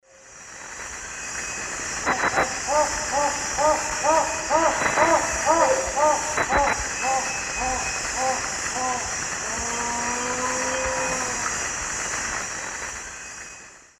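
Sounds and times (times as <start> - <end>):
birds in the Eastern Lowlands of South America: 0.5 - 13.9
Tigrisoma lineatum song in the Eastern Lowlands of South America: 1.5 - 11.6.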